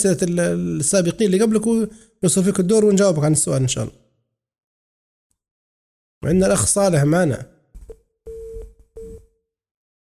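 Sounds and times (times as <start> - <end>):
speech: 0.0 - 4.0, 6.2 - 7.5
telephone busy tone after a call is cut off on a call-in line: 8.3 - 9.4.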